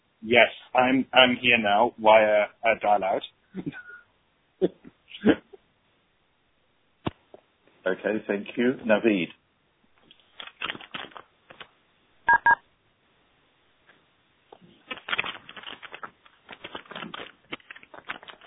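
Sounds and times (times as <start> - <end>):
speech: 0.2 - 3.8, 4.6 - 5.5, 7.8 - 9.4
short dial-tone beeps: 12.3 - 12.6
clicky keystrokes through a phone line on a conference call: 14.8 - 18.4.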